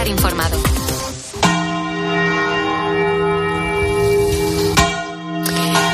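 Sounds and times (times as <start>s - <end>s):
speech: 0.1s - 1.0s
manually rung cathedral church bells: 1.4s - 5.9s.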